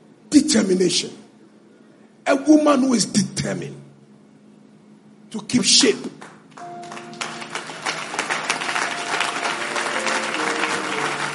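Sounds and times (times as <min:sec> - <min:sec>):
speech: 0:00.5 - 0:01.2, 0:02.3 - 0:03.8, 0:05.3 - 0:06.3
audience clapping during a sermon: 0:06.2 - 0:11.3.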